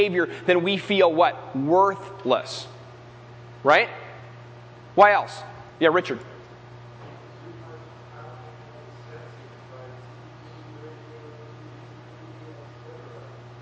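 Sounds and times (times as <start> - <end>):
speech: 0.0 - 2.8, 3.6 - 4.0, 5.0 - 6.3
air conditioner droning hum and airy hiss: 0.0 - 13.5
faint voices murmuring: 7.0 - 13.5.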